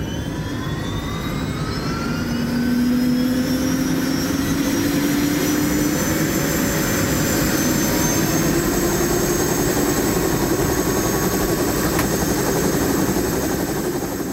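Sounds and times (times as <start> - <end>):
helicopter engine and turbine whine: 0.0 - 14.3
helicopter rotor thump in sightseeing flight over eruption area in Hawaii: 10.3 - 14.0.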